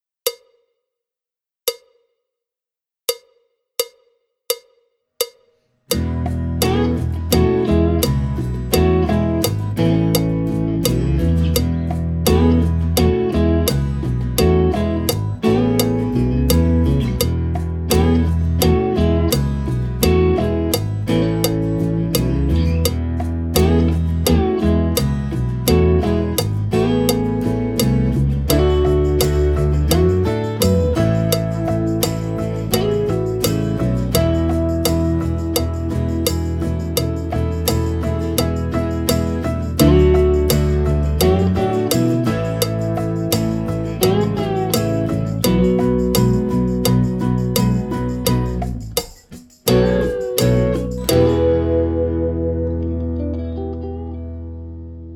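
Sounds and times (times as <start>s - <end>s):
backing track: 5.9s - 55.0s.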